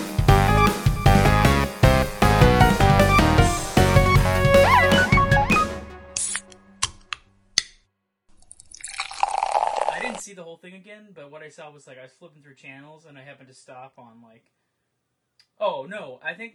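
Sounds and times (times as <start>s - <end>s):
music: 0.0s - 7.2s
drink being poured over ice: 8.3s - 10.2s
ice cubes dropping into a glass: 8.4s - 10.2s
speech: 10.6s - 14.6s, 15.6s - 16.5s.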